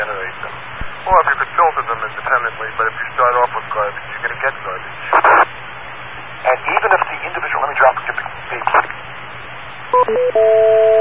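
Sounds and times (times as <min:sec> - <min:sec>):
steady hiss: 0:00.0 - 0:09.9
speech: 0:02.4 - 0:05.1
touch-tone telephone keypad DTMF tones: 0:10.0 - 0:11.0.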